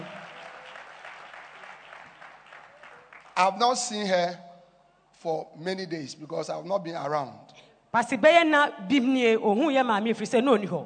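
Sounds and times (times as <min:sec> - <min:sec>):
room full of people applauding: 0:00.0 - 0:03.7
speech: 0:03.4 - 0:04.4, 0:05.2 - 0:10.8.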